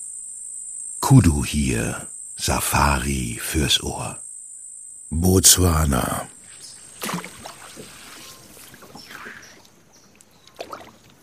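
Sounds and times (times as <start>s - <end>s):
speech: 1.1s - 4.2s, 5.1s - 6.3s
water lapping and gurgling: 6.8s - 11.2s.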